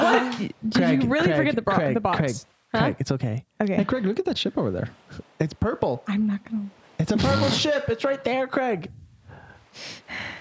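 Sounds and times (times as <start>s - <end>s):
speech: 0.2s - 9.0s, 9.8s - 10.3s
heavy breathing with raspy exhales: 9.2s - 10.3s.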